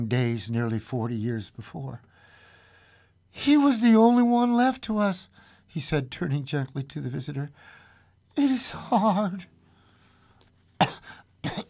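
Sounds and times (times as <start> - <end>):
speech: 0.0 - 2.1, 3.3 - 7.8, 8.4 - 9.5
man coughing: 10.8 - 11.6.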